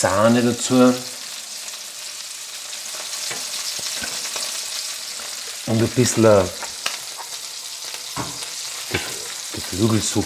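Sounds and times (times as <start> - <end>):
speech: 0.0 - 1.2, 5.7 - 6.6, 9.7 - 10.2
onions sizzling in a pan deglazed with white wine: 0.0 - 10.2.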